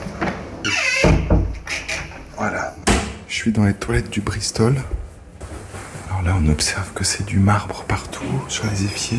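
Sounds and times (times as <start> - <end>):
door creaking open with a squeaky hinge: 0.2 - 2.3
door thudding shut: 0.9 - 1.6, 2.8 - 3.3
speech: 3.4 - 5.0, 6.4 - 9.1.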